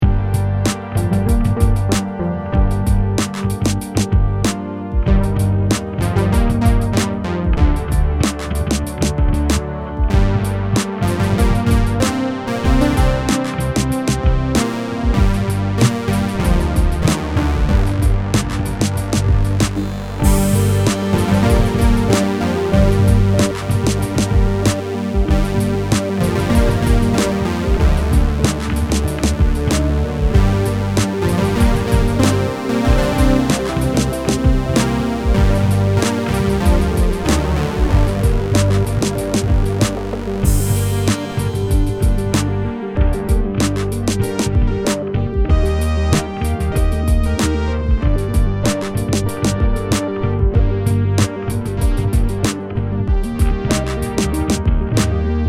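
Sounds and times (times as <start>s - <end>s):
synth chords: 0.0s - 55.4s.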